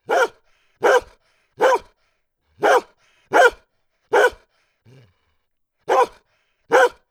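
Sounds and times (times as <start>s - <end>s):
dog barking: 0.0s - 1.9s, 2.6s - 4.4s, 5.9s - 7.0s.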